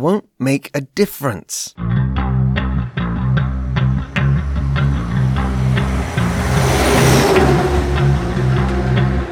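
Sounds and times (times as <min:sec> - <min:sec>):
speech: 0:00.0 - 0:02.2
car engine roaring and revving: 0:03.2 - 0:09.3.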